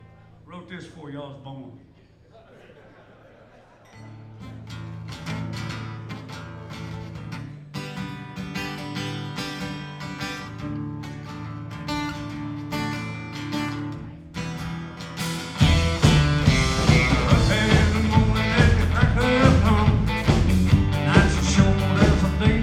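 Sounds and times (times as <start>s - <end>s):
laughter: 2.0s - 4.7s
drums: 4.6s - 22.6s.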